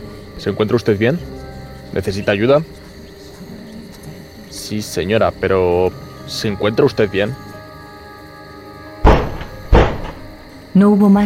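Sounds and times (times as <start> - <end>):
speech: 0.4 - 2.8, 4.6 - 7.5, 10.8 - 11.2
knocking on a door: 9.0 - 10.4.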